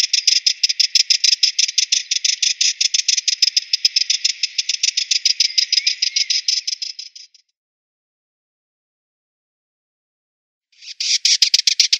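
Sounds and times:
Sardinian warbler giving a dry scolding rattle of rapid clicks: 0.0s - 7.4s, 10.8s - 11.9s.

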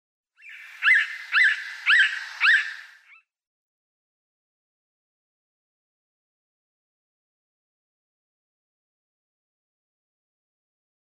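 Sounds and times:
Yellow-bellied Sapsucker calling: 0.4s - 3.2s.

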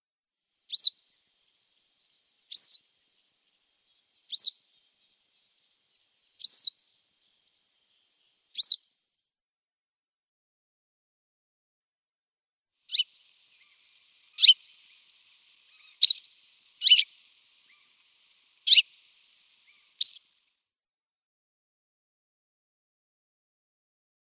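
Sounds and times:
Western yellow wagtail giving thin high slurred call notes: 0.7s - 8.8s, 12.9s - 20.4s.

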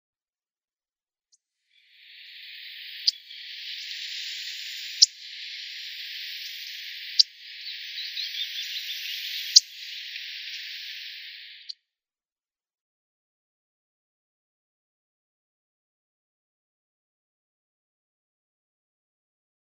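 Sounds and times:
Grasshopper Warbler calling: 1.8s - 11.7s.

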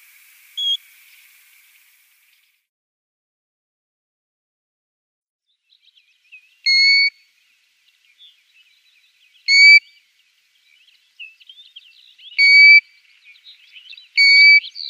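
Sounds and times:
European golden plover whistles: 0.6s - 0.8s, 6.6s - 7.2s, 9.5s - 10.0s, 12.4s - 12.9s, 14.2s - 14.8s.

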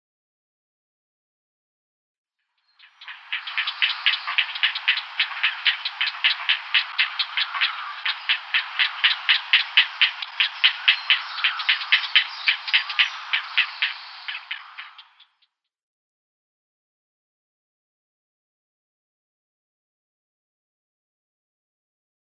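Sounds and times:
grey heron nestlings ticking chatter: 2.8s - 15.5s.

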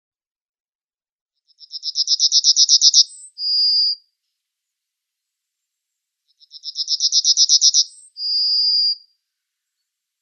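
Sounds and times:
yellowhammer singing: 1.5s - 4.0s, 6.3s - 9.1s.

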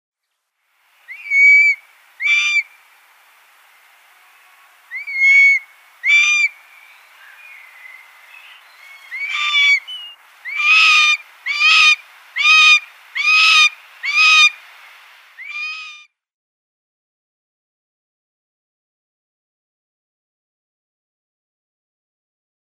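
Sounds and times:
Long-legged Buzzard nestling calling: 1.1s - 2.7s, 4.9s - 6.6s, 8.9s - 14.6s, 15.4s - 16.0s.

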